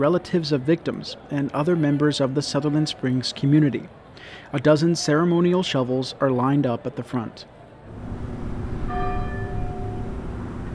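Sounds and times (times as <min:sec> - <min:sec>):
speech: 0:00.0 - 0:08.2
church bell ringing at a memorial service: 0:08.7 - 0:10.7.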